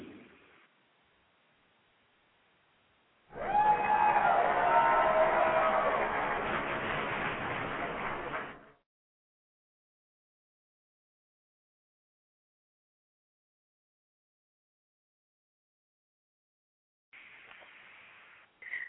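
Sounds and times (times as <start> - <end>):
large crowd applauding in a standing ovation: 3.3 - 8.8.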